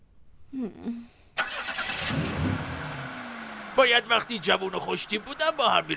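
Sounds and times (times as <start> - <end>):
speech: 0.5 - 1.2, 3.8 - 5.9
car engine cranking and starting: 1.4 - 5.9.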